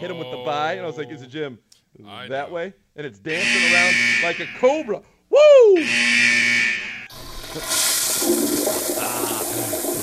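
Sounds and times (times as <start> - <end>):
speech: 0.0 - 6.6, 7.6 - 7.9
harsh buzzing tone: 3.3 - 4.8, 5.8 - 7.3
toilet flushing: 7.1 - 10.0.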